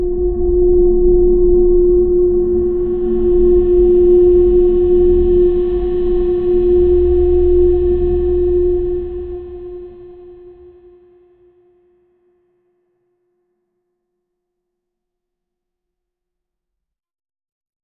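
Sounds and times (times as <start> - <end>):
futuristic corporate sound logo: 0.1 - 11.1.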